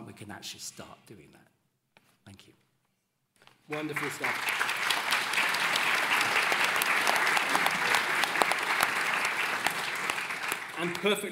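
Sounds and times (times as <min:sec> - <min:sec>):
speech: 0:00.2 - 0:01.6, 0:02.3 - 0:02.7, 0:03.7 - 0:04.7, 0:10.8 - 0:11.3
audience applause: 0:03.7 - 0:11.3.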